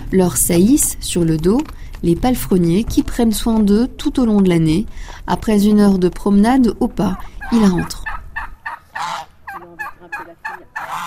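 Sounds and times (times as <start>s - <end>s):
speech: 0.1s - 8.0s
geese honking in a backyard: 7.0s - 11.0s
turkeys gobbling in a backyard: 7.0s - 11.0s.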